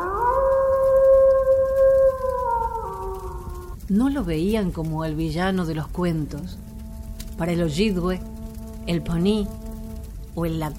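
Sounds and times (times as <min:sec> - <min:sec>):
wolf howling: 0:00.0 - 0:03.9
low rumbling background: 0:00.0 - 0:10.7
speech: 0:03.9 - 0:06.7, 0:07.4 - 0:09.6, 0:10.4 - 0:10.7.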